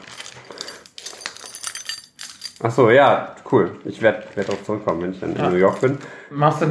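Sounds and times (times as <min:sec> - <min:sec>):
keys jangling while being searched for: 0:00.0 - 0:02.6
speech: 0:02.6 - 0:06.6.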